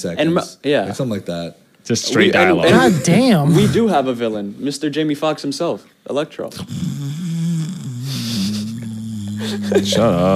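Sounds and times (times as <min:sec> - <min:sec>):
speech: 0:00.0 - 0:07.2, 0:09.4 - 0:10.3
person imitating snoring: 0:06.6 - 0:10.3.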